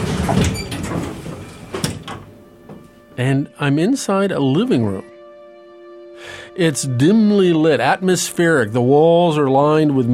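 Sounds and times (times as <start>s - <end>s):
elevator doors sliding open: 0.0s - 2.4s
elevator door clunk: 0.0s - 2.8s
speech: 0.3s - 0.6s, 3.2s - 5.1s, 6.2s - 10.1s.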